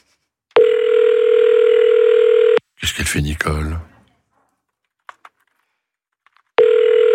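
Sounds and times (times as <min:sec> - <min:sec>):
telephone ringback tone on an outgoing call: 0:00.6 - 0:02.6, 0:06.6 - 0:07.1
speech: 0:03.1 - 0:03.9.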